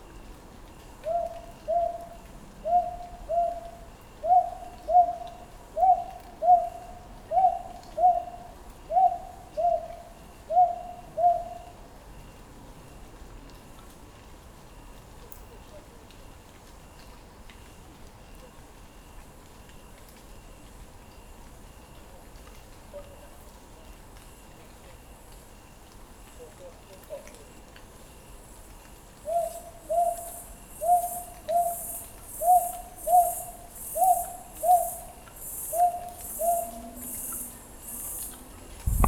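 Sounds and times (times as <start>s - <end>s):
Japanese barn owl calling: 1.0s - 11.7s, 29.2s - 39.0s.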